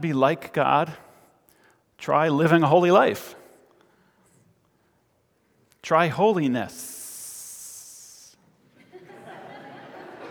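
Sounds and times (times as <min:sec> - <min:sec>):
speech: 0:00.0 - 0:01.0, 0:02.0 - 0:03.4, 0:05.8 - 0:07.0
preacher giving a sermon: 0:00.0 - 0:01.2, 0:02.0 - 0:03.5, 0:05.8 - 0:08.4
preacher imitating a snake with a hiss: 0:06.9 - 0:08.4
audience light laughter: 0:08.7 - 0:10.3.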